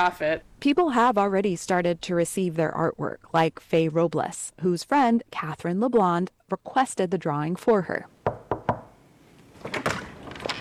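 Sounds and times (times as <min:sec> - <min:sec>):
speech: 0:00.0 - 0:08.2
apartment door thuds while being opened: 0:08.2 - 0:09.0
quiet clunks: 0:08.2 - 0:10.5.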